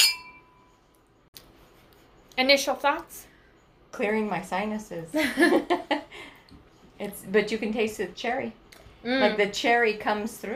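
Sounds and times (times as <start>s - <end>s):
wine glasses of Cabernet Sauvignon clinking in a toast: 0.0s - 0.7s
speech: 2.4s - 3.3s, 4.0s - 6.0s, 7.0s - 10.5s.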